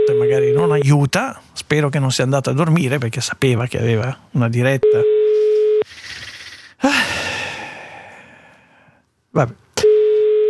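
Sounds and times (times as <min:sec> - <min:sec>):
phone ringback tone from an outgoing call at night: 0:00.0 - 0:00.8, 0:04.9 - 0:05.9, 0:09.8 - 0:10.4
speech: 0:00.3 - 0:05.2, 0:09.4 - 0:09.6
breathy hissing sigh: 0:05.8 - 0:09.0.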